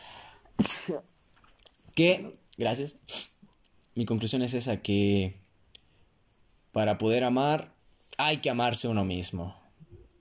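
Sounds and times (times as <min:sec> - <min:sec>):
person sneezing: 0:00.6 - 0:01.0, 0:03.1 - 0:03.4
speech: 0:00.6 - 0:01.2, 0:02.0 - 0:03.3, 0:04.0 - 0:05.4, 0:06.8 - 0:09.6.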